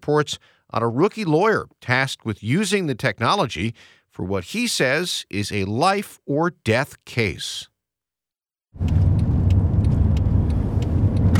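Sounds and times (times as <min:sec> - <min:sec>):
speech: 0:00.0 - 0:07.7, 0:08.7 - 0:09.0
Mercedes car engine rumbling while driving on road: 0:08.8 - 0:11.3
deep continuous road drone of Mercedes car: 0:08.8 - 0:11.3.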